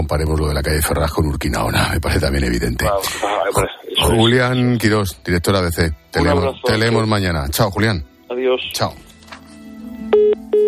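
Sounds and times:
speech: 0:00.0 - 0:09.1
electronic telephone line tones after a call is hung up: 0:10.1 - 0:10.6.

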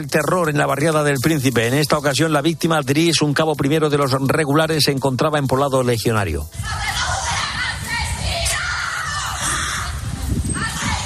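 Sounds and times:
speech: 0:00.0 - 0:07.2
grieving family members shouting and crying: 0:06.5 - 0:11.0.

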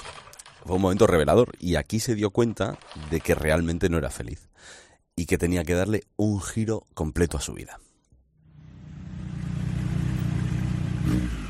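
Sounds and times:
speech: 0:00.7 - 0:07.9
motorcycle engine revving and pulling away: 0:08.5 - 0:11.4.

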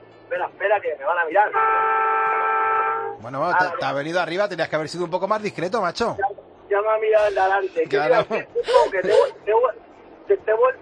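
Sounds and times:
speech: 0:00.3 - 0:02.2, 0:03.2 - 0:10.8
large trailer truck horn honking: 0:01.5 - 0:03.2.

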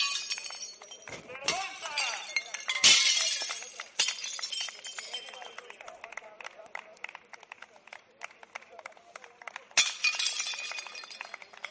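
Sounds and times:
plates being smashed at a hospitality workers' protest in Soria: 0:00.0 - 0:05.2, 0:09.8 - 0:11.4
clinking scattering plate shards: 0:00.0 - 0:05.4, 0:09.8 - 0:11.6.

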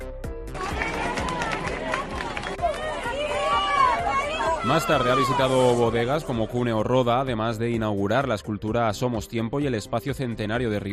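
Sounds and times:
crowd applauding to welcome a visitor: 0:00.5 - 0:06.0
voices calling out and chattering: 0:00.6 - 0:07.0
speech: 0:04.6 - 0:10.9.

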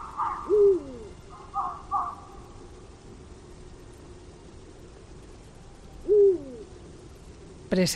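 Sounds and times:
Eurasian eagle-owl deep downward-sliding hoot at night in an oak wood: 0:00.0 - 0:03.0, 0:04.7 - 0:07.0.

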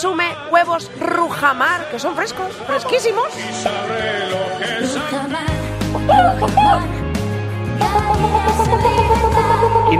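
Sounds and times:
speech: 0:00.0 - 0:07.0, 0:07.8 - 0:09.9
loud busy musical backing with bass: 0:00.0 - 0:09.9
hens clucking: 0:05.8 - 0:07.0, 0:07.8 - 0:09.9.

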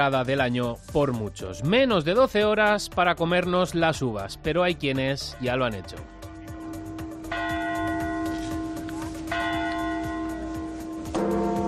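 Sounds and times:
speech: 0:00.0 - 0:06.2
large clock bell chiming in the Plaza del Ayuntamiento in Valencia, Spain: 0:06.9 - 0:11.6.

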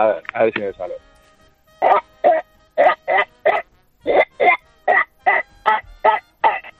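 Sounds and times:
speech: 0:00.0 - 0:01.1
person imitating nasal duck quacks: 0:01.8 - 0:06.7.

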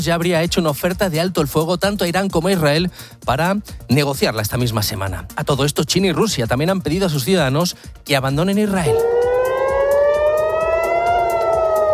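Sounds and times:
speech: 0:00.0 - 0:09.3
air raid siren wailing: 0:08.8 - 0:11.9.

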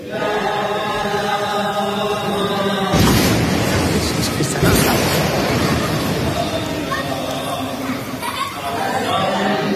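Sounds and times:
laughter: 0:00.0 - 0:09.7
voices of people praying singing together: 0:00.0 - 0:09.7
loud bomb blasts: 0:01.8 - 0:09.2.

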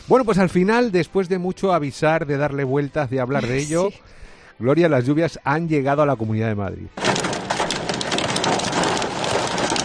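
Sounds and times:
speech: 0:00.1 - 0:07.1
dense hail pelting down during a storm: 0:07.0 - 0:09.8.

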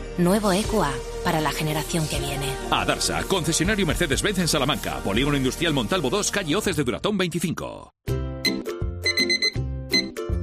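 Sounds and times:
speech: 0:00.2 - 0:08.0
alarm clock ringing with electronic melody: 0:08.4 - 0:10.2.

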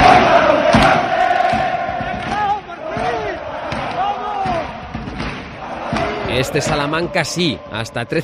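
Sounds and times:
thumping hits: 0:00.0 - 0:07.1
football crowd at the Estadio Helmántico in Salamanca roaring in goal celebration: 0:00.0 - 0:08.2
speech: 0:06.4 - 0:08.2.

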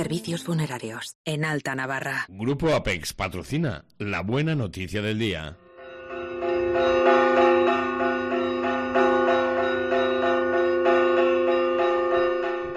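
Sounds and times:
speech: 0:00.0 - 0:05.6
large church bell of San Saturnino church in Artajona Navarra ringing: 0:05.6 - 0:12.7.

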